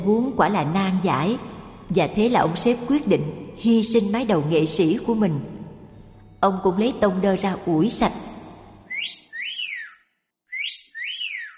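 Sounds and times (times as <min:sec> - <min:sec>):
speech: 0:00.0 - 0:05.6, 0:06.4 - 0:08.3
cheerful tuneless whistling: 0:08.9 - 0:11.5.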